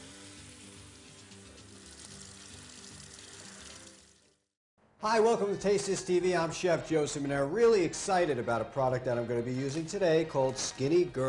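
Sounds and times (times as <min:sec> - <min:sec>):
tap water running as hands are rinsed after handling raw meat: 0:00.0 - 0:04.5
speech: 0:05.0 - 0:11.2.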